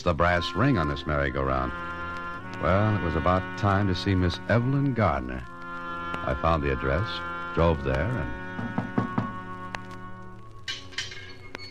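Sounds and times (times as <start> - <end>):
speech: 0.0 - 2.0, 2.6 - 5.5, 6.3 - 8.8
soft musical hum: 0.0 - 11.6
firm knocks on the door of a house: 8.5 - 9.4.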